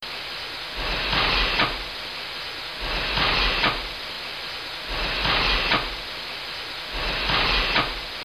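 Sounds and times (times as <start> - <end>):
pump: 0.0 - 8.2.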